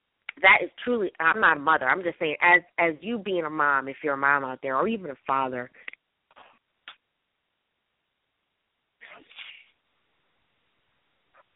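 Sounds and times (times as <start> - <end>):
speech: 0.4 - 5.9
person sneezing: 9.0 - 9.7.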